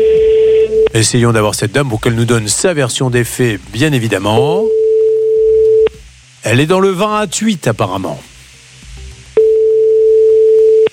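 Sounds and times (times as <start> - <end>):
outgoing telephone call ringback tone: 0.0 - 0.9, 4.7 - 5.9, 9.4 - 10.9
faint noise: 0.0 - 10.9
speech: 1.0 - 4.8, 6.4 - 8.3.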